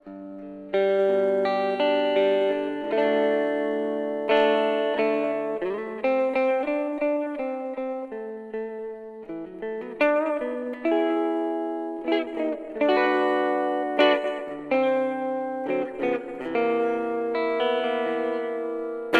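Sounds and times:
clean reverb: 0.0 - 19.1.

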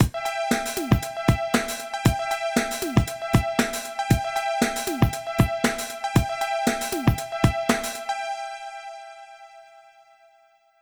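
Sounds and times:
electronic drum sample pad hits: 0.0 - 8.0.

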